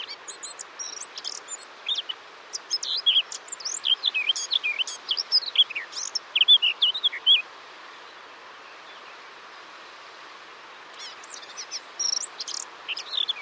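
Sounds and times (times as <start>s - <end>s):
Eurasian blackcap Sylvia atricapilla singing scratchy warble and fluty whistled phrases: 0.0s - 7.4s, 10.9s - 13.3s
faint background hiss: 0.0s - 13.3s.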